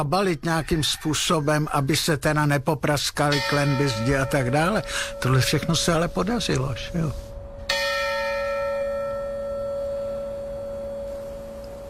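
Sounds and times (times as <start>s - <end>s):
speech: 0.0s - 7.3s
large church bell ringing with deep resonant tone: 3.2s - 11.8s.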